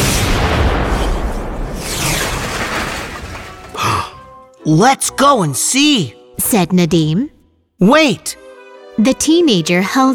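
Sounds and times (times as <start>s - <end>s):
loud deep fireball impact explosion boom: 0.0s - 3.6s
crackling debris from explosion: 0.0s - 4.5s
speech: 4.7s - 8.4s, 9.0s - 10.1s.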